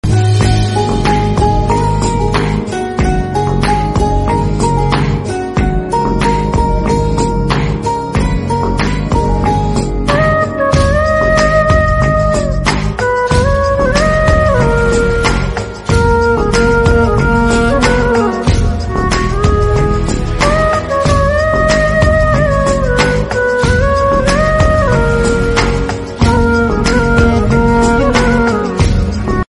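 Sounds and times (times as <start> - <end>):
instrumental music: 0.0 - 29.4.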